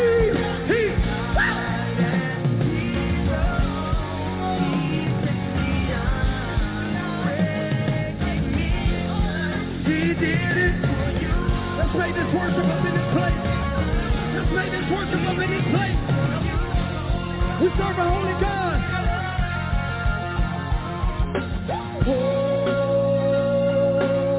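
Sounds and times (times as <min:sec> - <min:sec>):
large audience screaming and yelling: 0:00.0 - 0:24.3
rumbling drums: 0:00.0 - 0:24.3.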